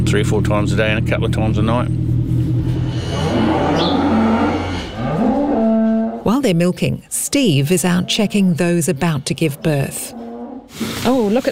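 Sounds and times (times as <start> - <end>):
speech: 0.1 - 2.1, 6.5 - 11.4
cows mooing in a frosty pregnancy paddock: 2.6 - 6.4, 7.5 - 10.7.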